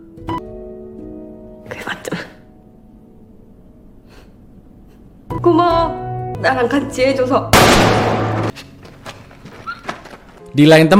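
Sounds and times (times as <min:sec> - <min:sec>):
speech: 0:05.4 - 0:08.6, 0:10.6 - 0:10.9
loud gunshot blast with tail: 0:07.6 - 0:08.5.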